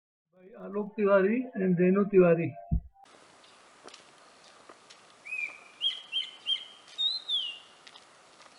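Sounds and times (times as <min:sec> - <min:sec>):
speech: 0:00.5 - 0:02.7
quiet background hiss: 0:03.0 - 0:08.5
grey-winged blackbird fluty whistled song: 0:05.2 - 0:07.7.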